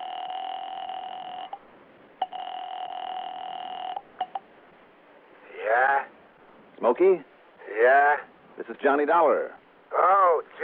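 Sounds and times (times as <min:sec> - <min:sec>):
telephone electronic dial tone: 0:00.0 - 0:01.6, 0:02.2 - 0:04.4
speech: 0:06.8 - 0:10.6.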